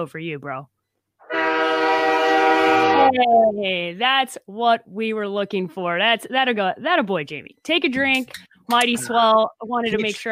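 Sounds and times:
speech: 0.0 - 0.8, 2.6 - 10.2
train horn sound effect blaring: 1.2 - 3.2.

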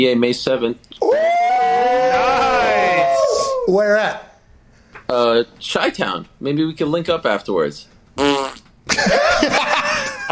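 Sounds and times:
speech: 0.0 - 1.2, 2.2 - 4.3, 5.1 - 9.7
cartoonish fart sound effect: 8.2 - 8.8
laughter: 8.9 - 10.3.

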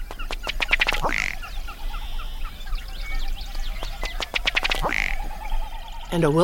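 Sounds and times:
faint chirps from other birds: 0.0 - 6.4
ruddy duck calling with dry ticking notes and croaking burp: 0.5 - 2.4, 4.2 - 5.4.

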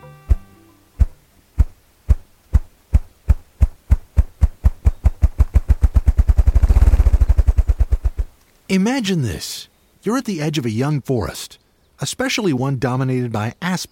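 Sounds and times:
male ruffed grouse wing drumming in display: 0.3 - 8.4
speech: 8.7 - 13.9.

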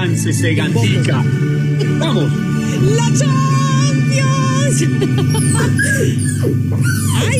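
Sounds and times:
speech: 0.2 - 7.3
laughter: 1.8 - 3.0, 4.7 - 6.3
dog whining: 5.0 - 7.3.

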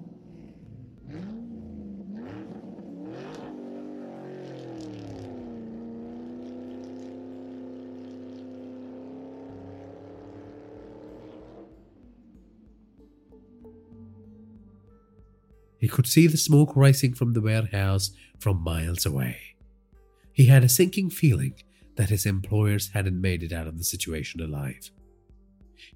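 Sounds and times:
car engine starting and revving: 0.0 - 13.0
speech: 15.8 - 19.4, 20.4 - 25.0.

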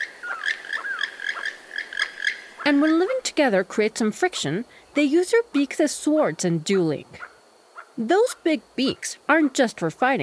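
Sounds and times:
Keel-billed Toucan slurred sliding calls: 0.0 - 2.7
Keel-billed Toucan croaking in rasping frog-like notes: 0.0 - 5.1, 7.0 - 9.6
speech: 2.7 - 7.3, 8.0 - 10.2.

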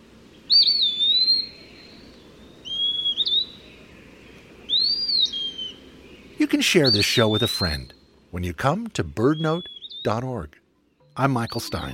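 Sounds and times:
Eastern Wood-Pewee flycatcher singing: 0.5 - 3.7, 4.7 - 8.1, 9.2 - 10.3, 10.9 - 11.9
speech: 0.6 - 0.9, 6.4 - 10.6, 11.2 - 11.9.

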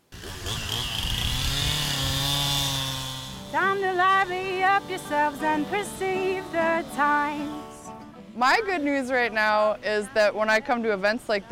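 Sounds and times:
chainsaw running at high throttle at a chainsaw event in Frederick: 0.0 - 7.8
speech: 3.6 - 7.7, 8.4 - 11.5.

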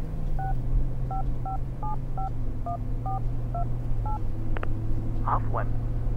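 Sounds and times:
dual-tone phone keypad beeps dialing a number: 0.4 - 4.2
speech: 1.6 - 6.1.

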